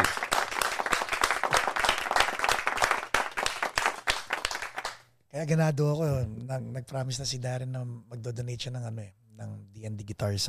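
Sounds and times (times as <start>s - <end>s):
audience applause welcoming a guest: 0.0s - 5.0s
speech: 5.4s - 10.4s.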